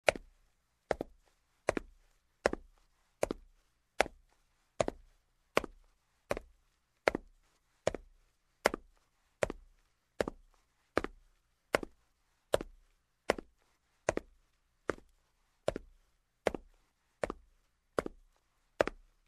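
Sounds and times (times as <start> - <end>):
steps in shoes on a marble floor: 0.9 - 7.3, 7.9 - 19.1.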